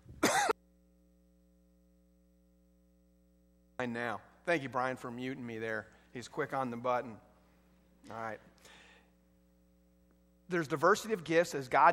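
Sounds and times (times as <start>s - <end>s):
faint steady hum: 0.0s - 11.9s
single loud harsh cough: 0.2s - 0.6s
speech: 3.8s - 7.3s, 8.0s - 8.8s, 10.5s - 11.9s.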